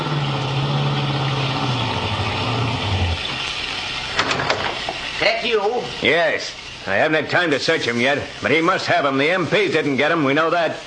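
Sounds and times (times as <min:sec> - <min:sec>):
car engine humming as the car slows and pulls up: 0:00.0 - 0:04.0
speech: 0:05.3 - 0:10.8.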